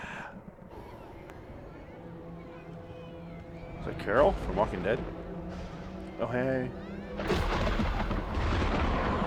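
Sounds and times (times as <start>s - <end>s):
speech: 4.0s - 5.2s, 6.2s - 7.6s
rolling thunder of a thunderstorm: 7.2s - 9.2s.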